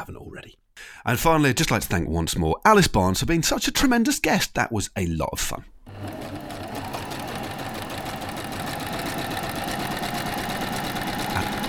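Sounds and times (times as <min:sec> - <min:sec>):
speech: 0:00.0 - 0:05.7
sewing machine stitching stripes onto a T-shirt: 0:05.9 - 0:11.6.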